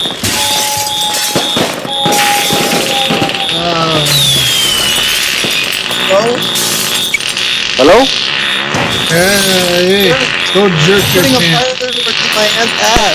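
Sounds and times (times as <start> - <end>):
Chinese fireworks bangs and crackles: 0.0 - 13.1
speech: 7.8 - 8.2, 9.2 - 11.7, 12.4 - 13.1.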